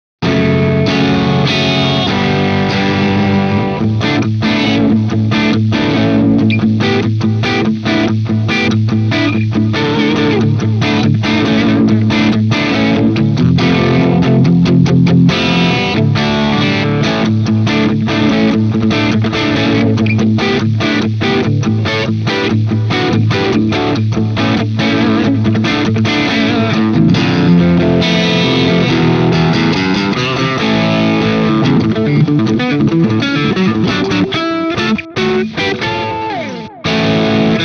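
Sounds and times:
crunchy riff: 0:00.2 - 0:37.6.

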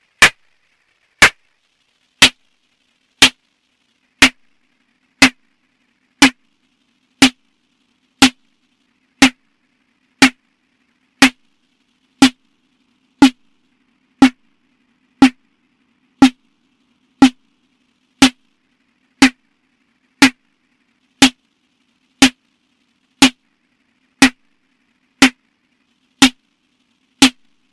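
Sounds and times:
snare drum through Moogerfooger ring modulator: 0:00.0 - 0:00.6, 0:01.2 - 0:01.6, 0:02.2 - 0:02.5, 0:03.2 - 0:03.4, 0:04.2 - 0:04.5, 0:05.2 - 0:05.6, 0:06.2 - 0:06.6, 0:07.2 - 0:07.5, 0:08.2 - 0:08.6, 0:09.2 - 0:09.5, 0:10.2 - 0:10.5, 0:11.2 - 0:11.6, 0:12.2 - 0:12.6, 0:13.2 - 0:13.6, 0:14.2 - 0:14.6, 0:15.2 - 0:15.6, 0:16.2 - 0:16.6, 0:17.2 - 0:17.6, 0:18.2 - 0:18.6, 0:19.2 - 0:19.5, 0:20.2 - 0:20.6, 0:21.2 - 0:21.5, 0:22.2 - 0:22.5, 0:23.2 - 0:23.5, 0:24.2 - 0:24.6, 0:25.2 - 0:25.6, 0:26.2 - 0:26.5, 0:27.2 - 0:27.7.

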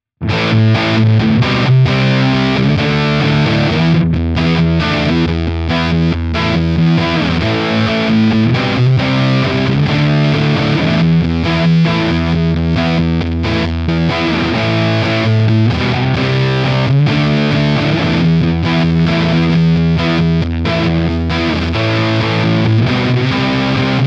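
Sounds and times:
guitar through a chainsaw effect: 0:00.2 - 0:24.0.

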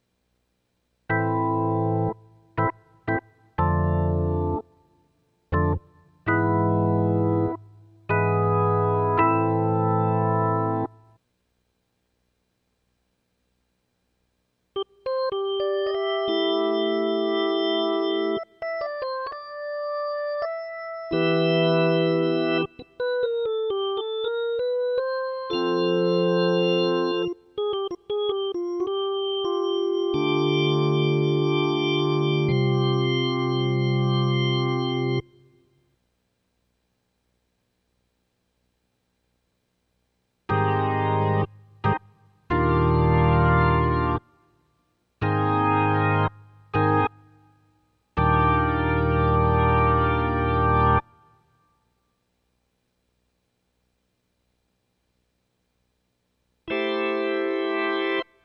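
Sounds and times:
organ: 0:01.1 - 0:04.8, 0:05.5 - 0:11.0, 0:14.8 - 0:35.5, 0:40.5 - 0:44.2, 0:45.2 - 0:47.3, 0:48.2 - 0:51.3, 0:56.7 - 0:58.4.

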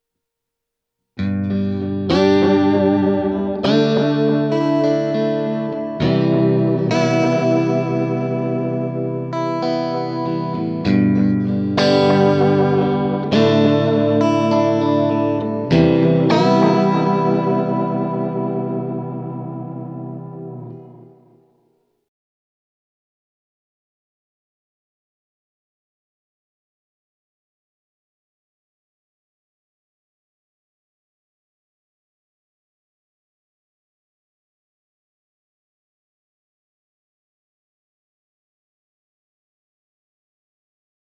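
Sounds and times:
strumming: 0:01.2 - 0:21.5.

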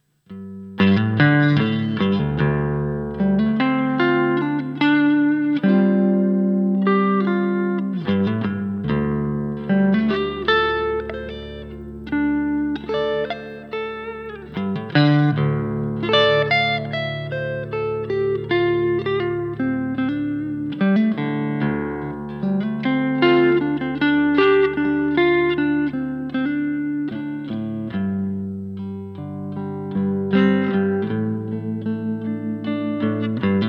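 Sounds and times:
guitar neck solo: 0:00.3 - 0:33.6.

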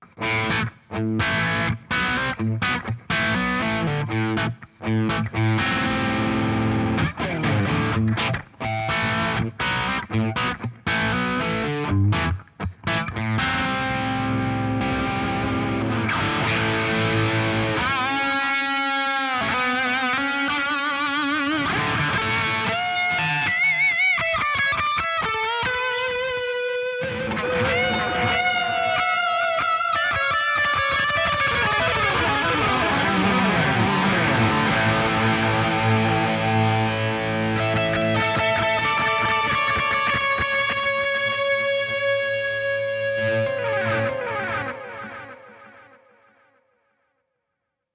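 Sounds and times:
Headrush Core lead tone with tape echo: 0:00.0 - 0:47.0.

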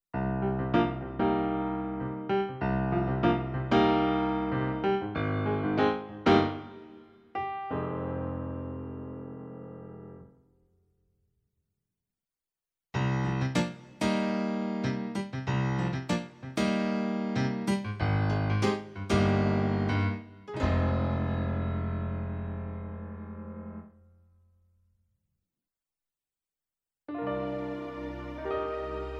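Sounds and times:
diverse pianos: 0:00.2 - 0:10.3, 0:13.0 - 0:24.0, 0:27.1 - 0:29.1.

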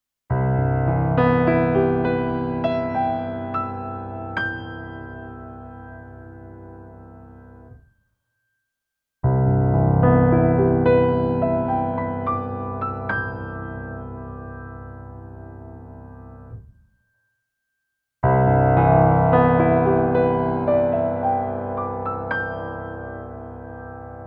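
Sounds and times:
white grand piano timbre on stage piano, bright mid soft: 0:00.3 - 0:07.8, 0:09.2 - 0:16.7, 0:18.2 - 0:24.2.

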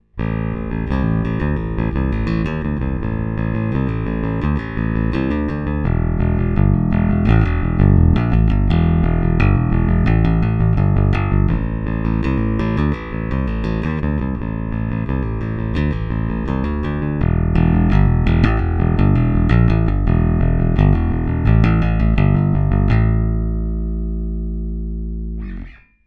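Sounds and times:
bass guitar played with a pick at the bridge, active pickups: 0:00.0 - 0:26.0.

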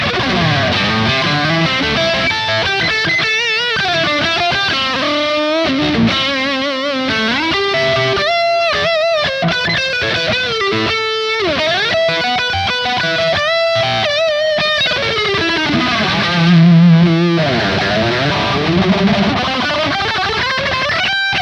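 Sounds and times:
Charvel Signature electric guitar high-gain lead on bridge and neck pickups: 0:00.0 - 0:21.4.

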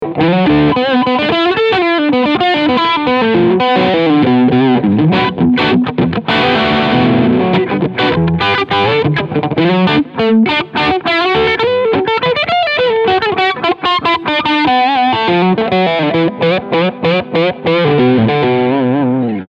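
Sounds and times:
overdriven P90 guitar: 0:00.0 - 0:19.4.

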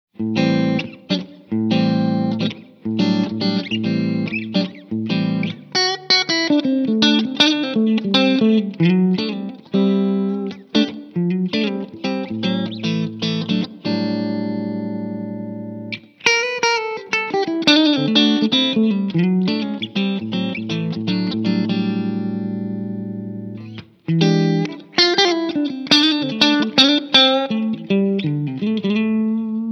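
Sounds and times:
clean tone from a 6V6 valve amplifier: 0:00.2 - 0:29.7.

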